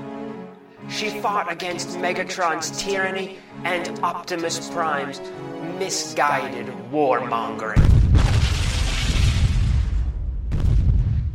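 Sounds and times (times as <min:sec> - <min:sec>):
speech: 0:00.9 - 0:08.3
explosion booming: 0:07.8 - 0:11.3.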